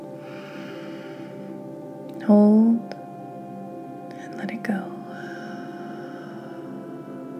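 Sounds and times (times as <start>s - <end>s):
soft sustained tonal background: 0.0s - 7.3s
slow deep inhale during a guided relaxation breathing exercise: 0.2s - 1.8s, 5.1s - 7.3s
speech: 2.3s - 2.9s.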